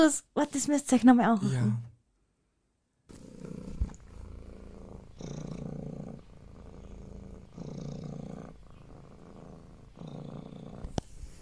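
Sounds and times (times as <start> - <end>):
speech: 0.0 - 1.9
cat purring: 3.1 - 11.3.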